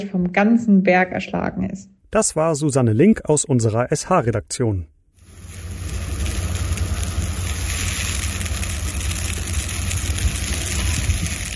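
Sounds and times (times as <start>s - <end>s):
speech: 0.0s - 5.0s
Christmas fir tree burning with roar and crackle: 5.2s - 11.5s.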